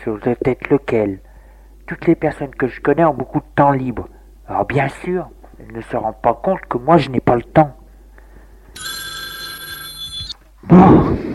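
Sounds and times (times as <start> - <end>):
speech: 0.0 - 1.3, 1.9 - 7.8, 10.6 - 11.3
telephone ringing with a bright electronic trill: 8.8 - 10.4.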